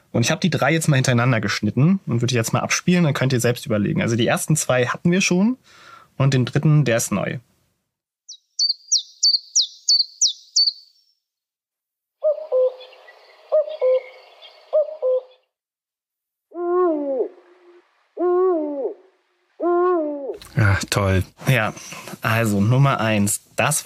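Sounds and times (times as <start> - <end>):
speech: 0.1 - 7.5, 21.0 - 23.8
chiffchaff calling: 8.3 - 11.0
eagle owl hooting: 8.3 - 11.0, 12.2 - 15.4, 16.5 - 20.4
cuckoo two-note call: 16.5 - 20.4.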